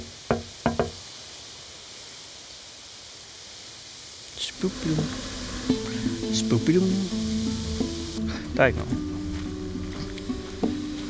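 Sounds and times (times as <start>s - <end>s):
faint hiss: 0.0s - 11.0s
knocking on a wooden door: 0.3s - 1.0s
speech: 4.4s - 7.2s, 8.6s - 9.1s.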